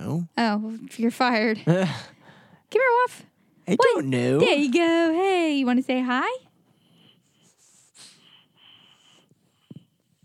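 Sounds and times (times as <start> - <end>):
speech: 0.1 - 6.5
dog snorting and sniffing: 6.9 - 10.2.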